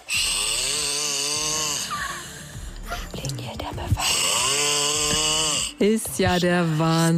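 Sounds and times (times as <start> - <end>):
man snoring loudly with rasping snores: 0.0 - 2.9, 4.0 - 7.1
speech: 3.3 - 4.2, 5.8 - 7.1.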